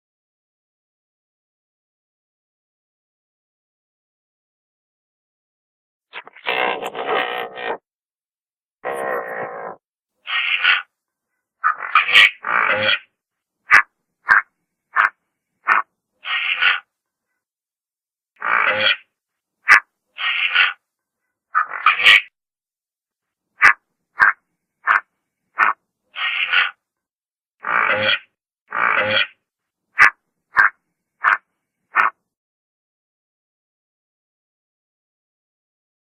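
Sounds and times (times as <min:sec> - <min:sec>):
pelican: 0:06.2 - 0:07.8, 0:08.8 - 0:10.9, 0:11.6 - 0:16.9, 0:18.4 - 0:20.8, 0:21.5 - 0:22.4, 0:23.6 - 0:26.8, 0:27.6 - 0:29.4, 0:30.0 - 0:32.2.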